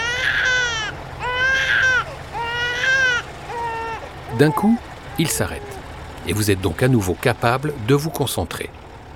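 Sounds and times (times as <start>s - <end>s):
baby crying: 0.0s - 5.8s
speech: 4.4s - 8.8s.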